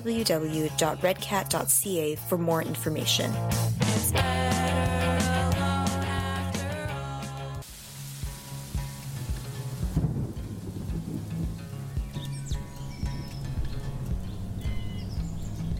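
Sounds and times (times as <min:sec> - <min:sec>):
speech: 0:00.0 - 0:05.7
rain in a rainstorm: 0:06.6 - 0:14.7
thunder rumbling in a rainstorm: 0:08.2 - 0:15.7.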